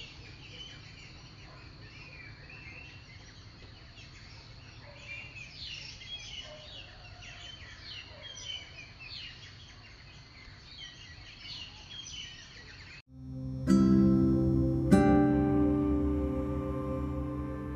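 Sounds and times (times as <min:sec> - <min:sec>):
small birds chirping and twittering in a garden tree: 0:00.0 - 0:13.0
steady low outdoor hum: 0:13.1 - 0:17.7.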